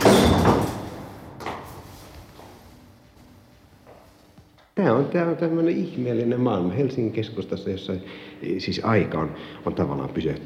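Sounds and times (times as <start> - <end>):
heavy door in a building in central Helsinki pushed open: 0.0 - 1.7
speech: 4.8 - 10.4.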